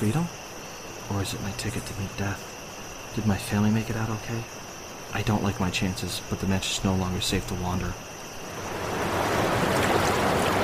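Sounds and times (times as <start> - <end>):
speech: 0.0 - 0.4, 1.1 - 8.7
roar of rushing water crashing down: 8.4 - 10.6.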